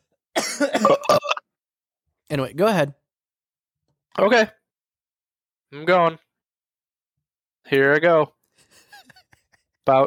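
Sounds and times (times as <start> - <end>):
harsh raspy coughs: 0.3 - 1.5
speech: 0.6 - 1.2, 2.3 - 3.0, 4.2 - 4.6, 5.7 - 6.2, 7.6 - 8.4, 9.8 - 10.0.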